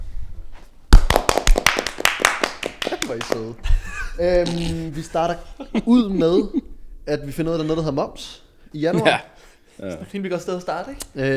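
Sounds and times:
small group applauding: 0.9 - 3.6
laughter: 2.6 - 6.8, 8.8 - 9.4
speech: 3.1 - 11.3.

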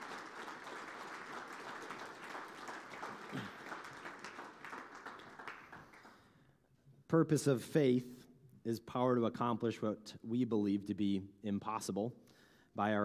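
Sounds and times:
crowd applauding: 0.0 - 6.2
speech: 7.1 - 13.0.

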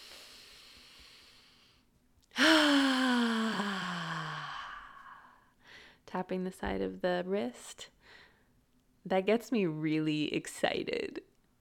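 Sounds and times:
deep breath in: 0.0 - 1.8, 2.4 - 6.0
speech: 6.2 - 8.0, 9.0 - 11.3.

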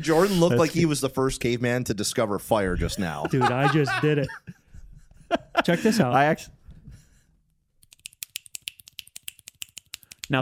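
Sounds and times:
speech: 0.0 - 4.6, 5.6 - 6.6, 10.3 - 10.4
laughter: 2.8 - 6.3
finger tapping, clicking and snapping: 7.8 - 10.4.

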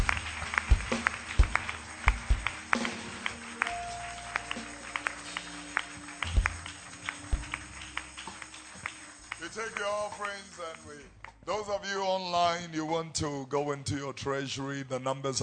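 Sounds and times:
sustained musical drone: 0.0 - 11.1
audience clapping hands: 0.0 - 11.5
speech: 11.7 - 15.4.

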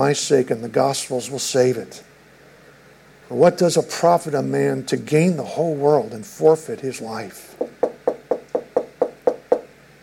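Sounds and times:
speech: 0.0 - 2.1, 3.3 - 7.7
firm knocks on a door: 7.6 - 9.7.

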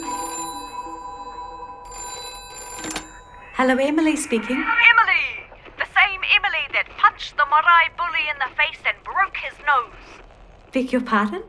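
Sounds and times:
home telephone ringing with an electronic trill: 0.0 - 6.5
speech: 3.6 - 5.1, 7.5 - 11.4.

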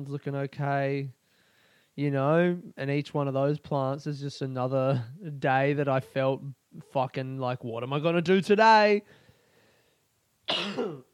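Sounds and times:
speech: 0.0 - 1.2, 2.0 - 9.2, 10.5 - 11.1
person giving a harsh raspy cough: 10.5 - 11.1.

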